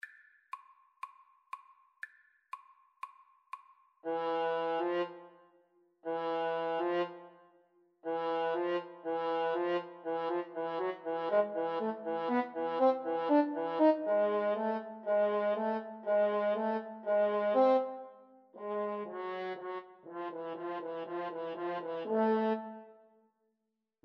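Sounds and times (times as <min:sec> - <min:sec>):
horn: 0:04.0 - 0:05.3, 0:06.0 - 0:07.3, 0:08.0 - 0:17.9, 0:18.6 - 0:22.7.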